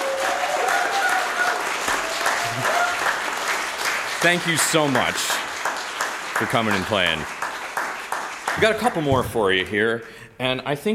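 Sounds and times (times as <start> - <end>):
concert crowd whooping: 0.0 - 3.2
live concert audience applause: 0.0 - 9.8
speech: 4.2 - 5.4, 6.4 - 7.4, 8.6 - 10.9.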